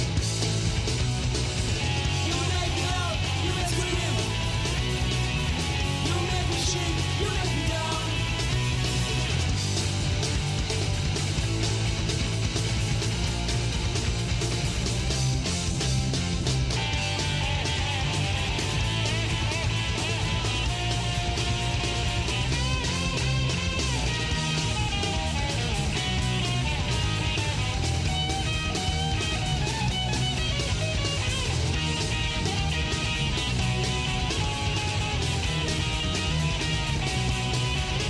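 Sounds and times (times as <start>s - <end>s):
French garage punk rock song: 0.0s - 38.0s
dense distorted guitars: 0.0s - 38.0s
driving drums: 0.0s - 38.0s
shouted vocals: 2.0s - 9.4s.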